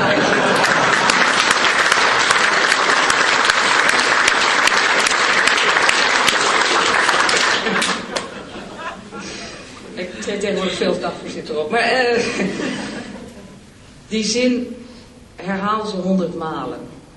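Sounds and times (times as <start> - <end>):
laughter: 0.0 - 1.6, 7.0 - 10.9, 12.2 - 13.7
sizable crowd applauding: 0.0 - 8.6
speech: 11.5 - 12.5, 14.1 - 14.8, 15.5 - 16.8.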